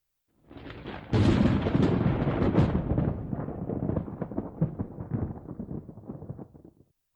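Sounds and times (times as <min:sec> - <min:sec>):
thunderclap and rumbling peal during a lightning storm: 0:00.5 - 0:06.8.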